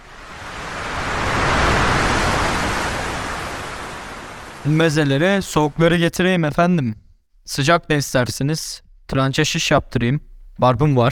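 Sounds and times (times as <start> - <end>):
sea water lapping at the shore: 0.0 - 4.9
speech: 4.6 - 11.0.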